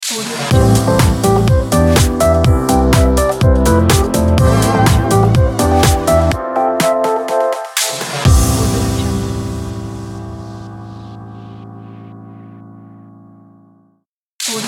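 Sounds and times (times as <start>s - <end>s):
shopping commercial logo jingle: 0.6s - 6.7s, 8.3s - 13.8s.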